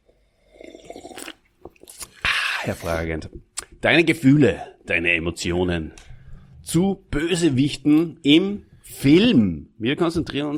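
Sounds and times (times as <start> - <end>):
sipping and swallowing a cola-orange soft drink: 0.0 - 3.8
speech: 2.6 - 6.1, 6.7 - 10.5.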